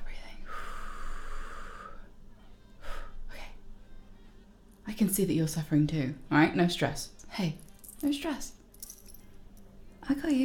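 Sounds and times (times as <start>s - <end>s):
heavy breathing: 0.4s - 3.6s
speech: 5.0s - 8.6s, 10.1s - 10.4s.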